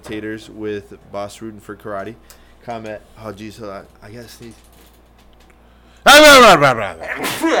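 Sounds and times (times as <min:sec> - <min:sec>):
speech: 0:00.1 - 0:04.7, 0:06.0 - 0:07.5
person sneezing: 0:07.0 - 0:07.5.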